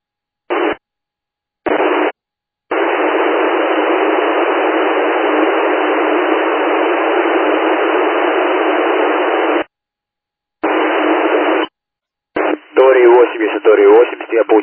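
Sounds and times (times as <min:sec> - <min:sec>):
two-way radio static bursts: 0:00.5 - 0:00.8, 0:01.7 - 0:02.1, 0:02.7 - 0:09.7, 0:10.6 - 0:11.7, 0:12.4 - 0:14.6
speech: 0:13.7 - 0:14.6.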